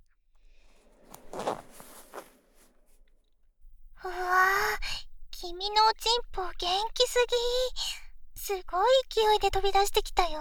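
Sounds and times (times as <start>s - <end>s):
trouser zipper being unzipped: 1.0s - 2.7s
speech: 5.9s - 7.9s, 8.5s - 10.3s.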